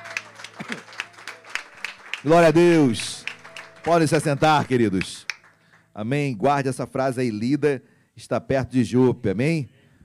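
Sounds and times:
audience clapping in a rhythmic beat: 0:00.0 - 0:06.0
speech: 0:02.2 - 0:03.2, 0:03.8 - 0:05.2, 0:06.0 - 0:09.8.

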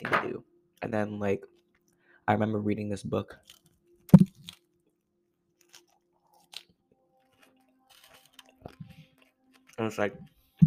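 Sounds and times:
speech: 0:00.9 - 0:01.6, 0:02.3 - 0:03.6, 0:09.8 - 0:10.3
loud crunching chewing while eating: 0:03.4 - 0:04.7, 0:05.5 - 0:10.4.

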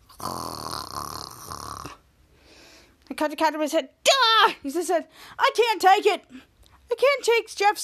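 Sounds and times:
loud raspy rattling snore: 0:00.0 - 0:02.0
speech: 0:03.2 - 0:07.8.

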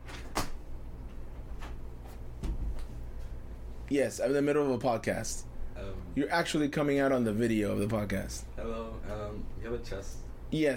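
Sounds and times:
low steady room hum: 0:00.0 - 0:10.7
door thump and rattle: 0:02.4 - 0:02.8
speech: 0:03.9 - 0:10.7.

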